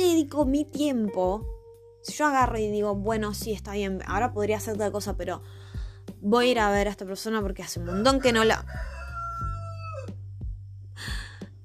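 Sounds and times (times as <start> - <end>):
speech: 0.2 - 5.6, 6.2 - 9.0
neighbour's rooster crowing: 7.9 - 10.2.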